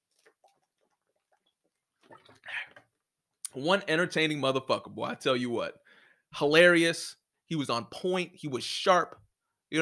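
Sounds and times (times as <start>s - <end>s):
water being poured: 0.0s - 2.9s
speech: 3.6s - 9.7s.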